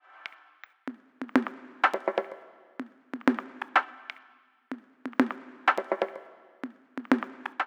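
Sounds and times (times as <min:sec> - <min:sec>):
drum pad percussion: 0:00.0 - 0:07.6.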